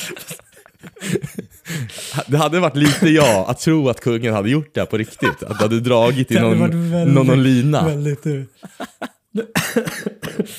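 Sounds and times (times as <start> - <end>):
laughter: 0.0 - 2.0, 5.2 - 10.5
speech: 0.1 - 0.4, 2.2 - 10.5
person coughing dry and harsh: 2.8 - 3.5, 9.4 - 10.5.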